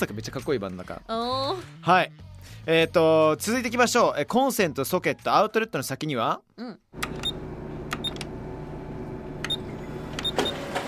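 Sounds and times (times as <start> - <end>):
speech: 0.0 - 7.2
Xerox photocopier running with a low mechanical hum: 7.0 - 10.8
Xerox photocopier clicks and chirps: 9.4 - 10.6.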